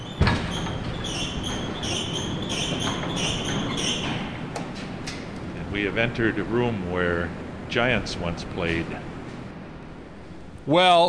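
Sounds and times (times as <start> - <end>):
heavy fire door clunking open at a radio transmitter site: 0.0 - 6.1
steady rushing roar at a radio transmitter site: 1.7 - 10.7
speech: 5.8 - 9.2, 10.6 - 11.0.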